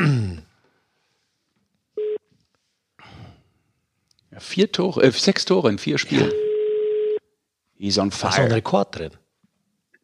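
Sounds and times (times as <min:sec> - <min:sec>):
electronic telephone ringing tone of an outgoing call: 0:02.0 - 0:02.2, 0:06.3 - 0:07.2
speech: 0:04.4 - 0:06.4, 0:07.8 - 0:09.2
voice bursts: 0:06.1 - 0:06.4.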